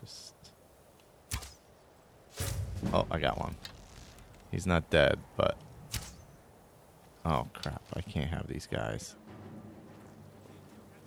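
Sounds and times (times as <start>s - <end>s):
video game arrow swish loosed from a bow: 1.3s - 4.6s, 5.7s - 7.2s
speech: 2.8s - 3.7s, 4.5s - 5.6s, 7.2s - 9.2s.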